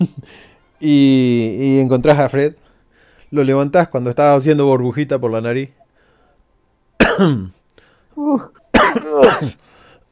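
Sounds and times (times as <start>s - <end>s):
speech: 0.8s - 2.6s, 3.3s - 5.8s, 7.1s - 7.6s, 8.2s - 9.6s
person coughing as a character in a tabletop role-playing game: 7.0s - 7.6s, 8.7s - 9.6s.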